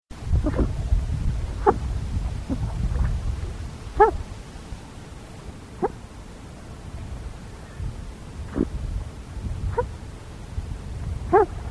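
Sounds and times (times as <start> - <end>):
common moorhen calls: 0.3 - 4.4, 5.1 - 10.0, 11.0 - 11.6.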